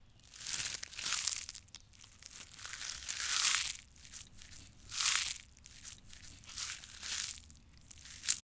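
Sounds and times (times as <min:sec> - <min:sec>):
chewing hard grass: 0:00.2 - 0:08.4.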